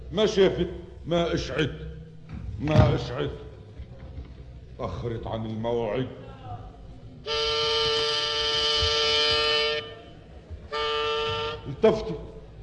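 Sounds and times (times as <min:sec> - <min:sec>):
speech: 0:00.1 - 0:02.0, 0:02.6 - 0:03.5, 0:04.8 - 0:06.2, 0:07.2 - 0:07.5, 0:11.8 - 0:12.3
loud sustained car horn blasts: 0:07.2 - 0:12.3.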